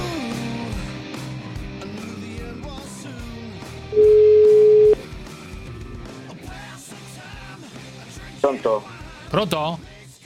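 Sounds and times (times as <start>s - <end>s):
telephone call ringing tone: 3.9s - 5.0s
speech: 9.4s - 9.8s.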